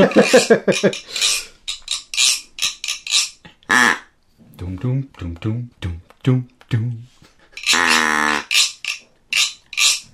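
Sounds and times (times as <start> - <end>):
speech: 0.0 - 1.5, 4.6 - 7.1
castanets clicking: 0.0 - 3.5, 7.6 - 10.1.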